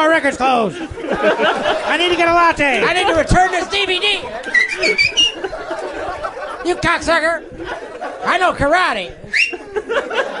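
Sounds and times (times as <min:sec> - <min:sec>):
speech: 0:00.2 - 0:05.3, 0:06.6 - 0:10.3
laughter: 0:00.2 - 0:10.3
person whistling a quick warbling tune: 0:04.6 - 0:05.4, 0:09.3 - 0:09.6.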